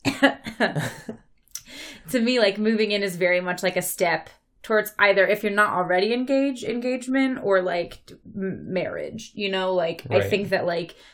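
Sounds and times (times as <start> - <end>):
speech: 0.2 - 1.2, 2.1 - 11.1
coughing: 10.1 - 10.5.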